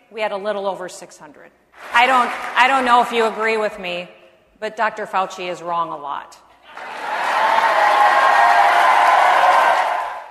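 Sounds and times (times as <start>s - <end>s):
speech: 0.1s - 6.5s
large crowd roaring with applause and cheering: 6.7s - 10.2s.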